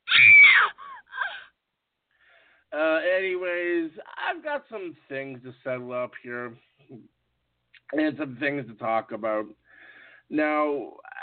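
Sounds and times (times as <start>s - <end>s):
woman giving short strained cries: 0.0s - 1.5s
woman screaming: 0.0s - 1.5s
speech: 2.7s - 7.2s, 7.9s - 9.6s, 10.3s - 11.2s.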